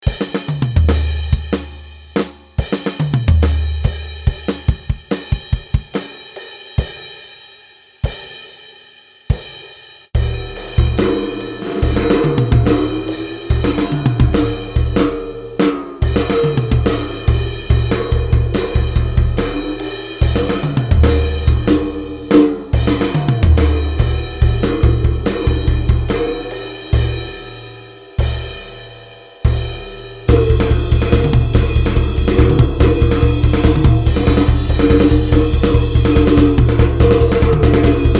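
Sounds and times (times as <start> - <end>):
drums in a demo: 0.0 - 38.1.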